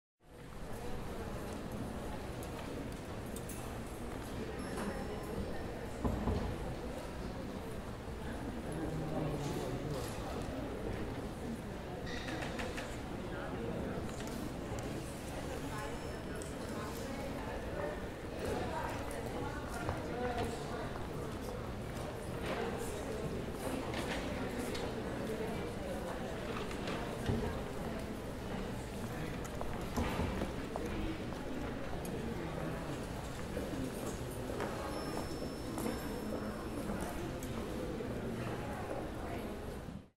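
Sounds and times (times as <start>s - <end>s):
museum lobby ambience: 0.3s - 40.1s.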